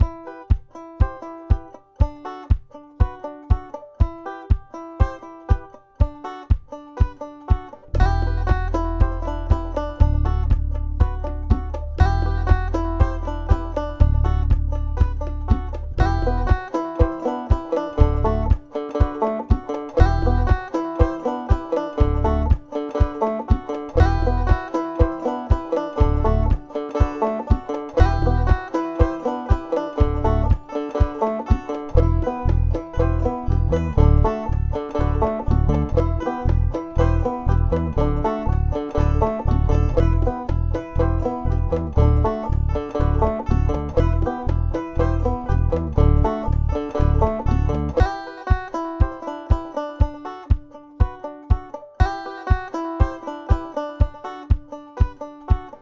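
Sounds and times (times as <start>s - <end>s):
banjo trance music: 0.0s - 55.8s.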